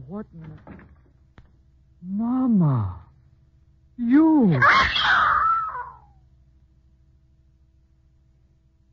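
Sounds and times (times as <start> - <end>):
speech: 0.1 - 1.0, 2.0 - 3.0, 4.0 - 5.3
person screaming in fright: 4.5 - 6.1.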